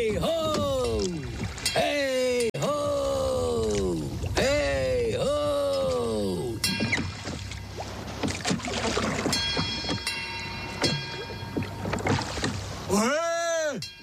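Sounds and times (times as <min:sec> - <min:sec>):
speech: 0:00.0 - 0:00.6
oars rowing a rowboat through water: 0:00.0 - 0:13.8.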